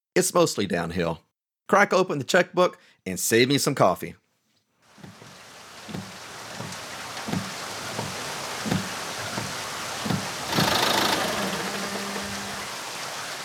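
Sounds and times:
speech: 0.2 - 4.2
rain pattering: 4.9 - 13.4
old Ford car engine cranking, starting and idling: 10.4 - 13.0.

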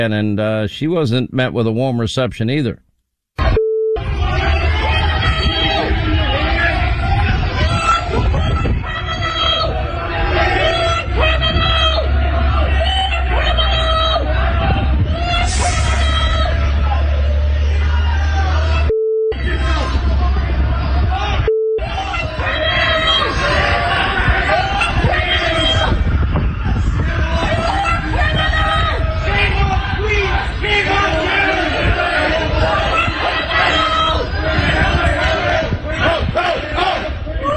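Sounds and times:
speech: 0.0 - 2.8
outdoor crowd booing and heckling: 3.4 - 37.5
steady electronic beep tone: 21.5 - 21.9.

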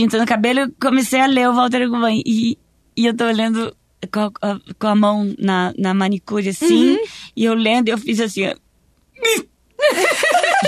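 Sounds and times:
speech: 0.0 - 8.6, 9.2 - 10.6
person giving a short choked hiccup-like sob: 6.6 - 7.1
wavering voiced vocal sound: 6.6 - 7.1
laughter: 9.8 - 10.6.

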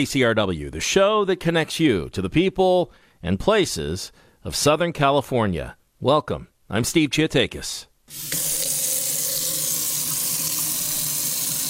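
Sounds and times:
speech: 0.0 - 8.6
water running from a faucet into a sink: 8.1 - 11.6.

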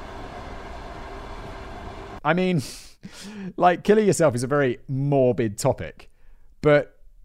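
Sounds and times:
freight train rumbling past: 0.0 - 2.2
speech: 2.2 - 7.0.

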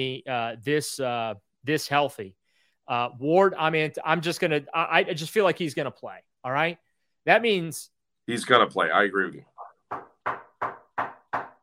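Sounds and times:
speech: 0.0 - 10.8
knocking on wood: 9.8 - 11.6.

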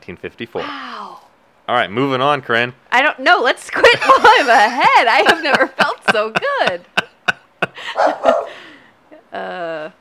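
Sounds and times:
speech: 0.0 - 6.9, 7.6 - 8.6, 9.3 - 9.9
people laughing: 3.7 - 8.7
dog barking in sharp bursts: 8.0 - 8.5.

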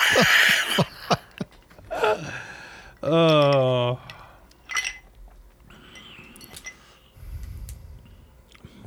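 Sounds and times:
speech: 0.2 - 0.9, 3.1 - 3.4
glass clinking as a man fishes a cherry out: 4.6 - 5.1, 5.8 - 6.9.

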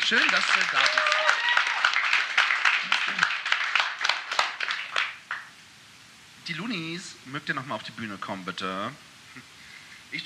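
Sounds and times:
crowd applauding: 0.0 - 5.5
speech: 0.1 - 1.3, 6.5 - 9.5.

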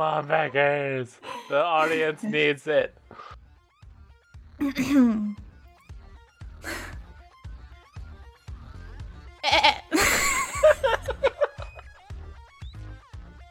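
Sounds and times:
speech: 0.0 - 3.4, 4.6 - 5.4
laughter: 1.4 - 2.5, 9.5 - 12.0
person imitating a goat bleat: 9.4 - 10.0.

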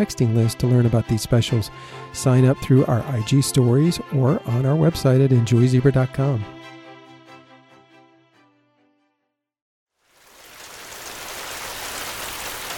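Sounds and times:
speech: 0.0 - 6.6
rain falling: 10.0 - 12.7.

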